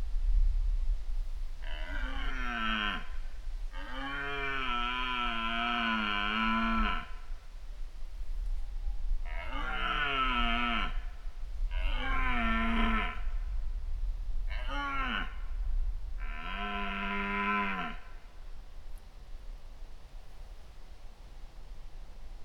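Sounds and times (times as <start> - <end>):
constant low rumble: 0.0 - 3.8, 7.1 - 17.0
red deer roaring in mating season in Poland: 1.6 - 3.1, 3.8 - 7.1, 9.3 - 11.0, 11.7 - 13.3, 14.5 - 15.4, 16.2 - 18.0.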